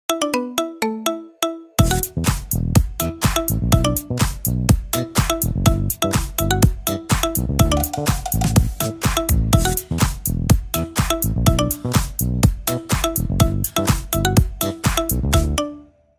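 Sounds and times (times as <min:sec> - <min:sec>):
marimba remix ringtone: 0:00.1 - 0:16.0.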